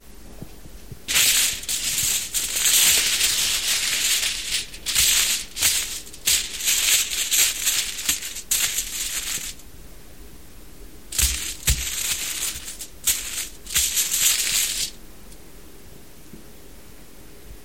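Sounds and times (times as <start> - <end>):
tin foil: 1.1 - 9.6, 11.1 - 15.0.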